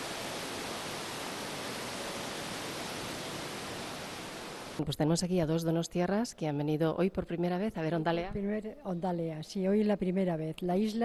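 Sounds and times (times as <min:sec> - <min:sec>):
sea roaring: 0:00.0 - 0:04.8
speech: 0:04.8 - 0:11.0.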